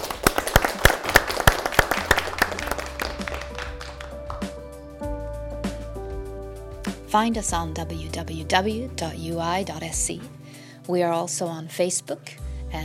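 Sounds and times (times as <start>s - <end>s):
audience applauding the speakers: 0.0s - 4.7s
speech: 7.1s - 10.3s, 10.9s - 12.8s.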